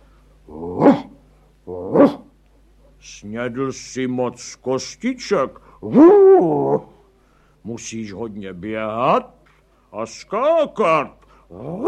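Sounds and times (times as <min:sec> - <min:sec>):
dog barking: 0:00.8 - 0:01.1, 0:02.0 - 0:03.0
speech: 0:01.9 - 0:02.2, 0:03.2 - 0:06.9, 0:07.6 - 0:11.8.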